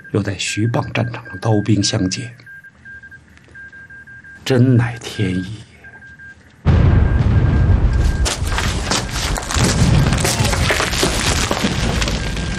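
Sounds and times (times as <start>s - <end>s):
speech: 0.1s - 2.5s, 4.5s - 5.7s
crackling debris: 6.6s - 12.5s
loud explosion at an artillery position destroying 105 mm howitzers: 6.7s - 12.5s.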